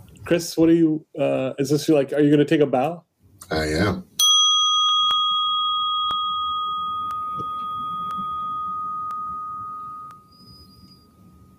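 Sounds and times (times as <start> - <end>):
speech: 0.3 - 4.1
meditation bell ringing: 4.2 - 11.5.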